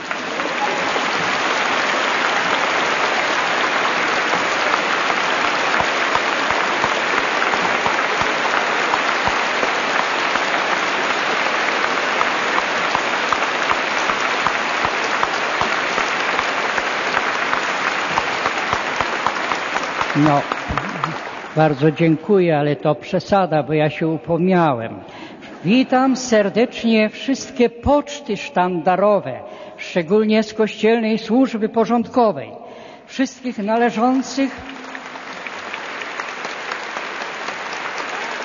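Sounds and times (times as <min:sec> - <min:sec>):
sustained applause from a large audience: 0:00.0 - 0:22.1, 0:34.4 - 0:38.4
speech: 0:20.2 - 0:20.6, 0:21.6 - 0:34.7.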